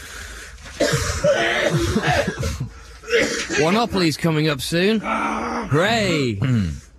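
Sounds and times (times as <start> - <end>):
person coughing harshly: 0.8 - 3.7
speech: 3.6 - 6.8.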